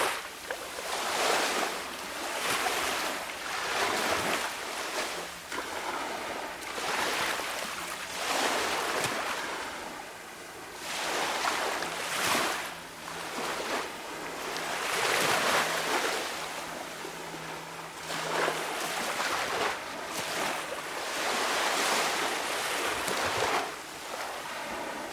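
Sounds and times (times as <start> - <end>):
ocean waves washing onto sand: 0.0 - 25.1.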